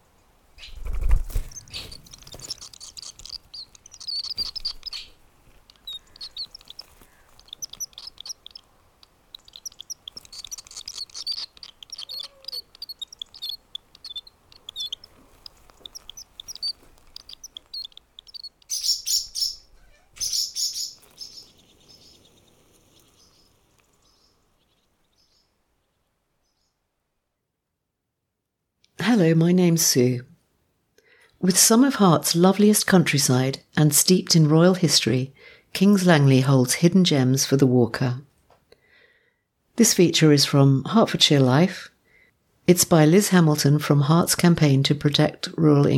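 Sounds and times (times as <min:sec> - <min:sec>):
small birds chirping and calling: 0:00.0 - 0:27.0
speech: 0:29.2 - 0:30.3, 0:31.4 - 0:38.3, 0:39.8 - 0:41.9, 0:42.7 - 0:45.9.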